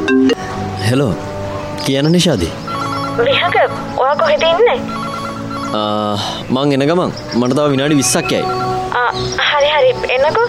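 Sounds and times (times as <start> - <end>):
speech: 0.9 - 2.6, 3.2 - 5.0, 5.7 - 10.4
telephone ringing with an incoming call: 2.6 - 6.4, 7.9 - 10.4.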